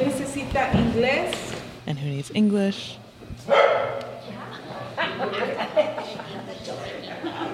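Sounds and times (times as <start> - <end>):
residents murmuring and talking at a meeting: 0.0 - 7.5
speech: 0.5 - 4.0
stray dog barking in a church: 3.5 - 4.2
laughter: 4.8 - 7.5.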